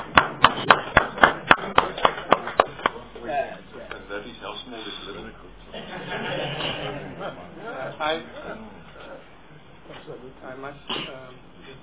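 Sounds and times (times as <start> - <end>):
small group clapping at a committee meeting: 0.0 - 3.2
laughter: 5.7 - 9.1.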